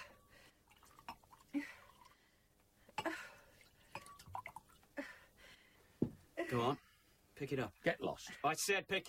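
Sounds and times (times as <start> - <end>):
drinks poured into two glasses: 0.7 - 2.1
speech: 6.5 - 9.0.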